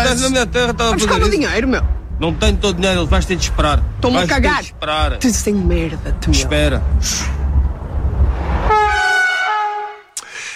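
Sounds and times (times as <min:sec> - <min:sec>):
speech: 0:00.0 - 0:07.4
low rumble from a moving train: 0:00.0 - 0:09.5
train whistle: 0:08.7 - 0:10.2.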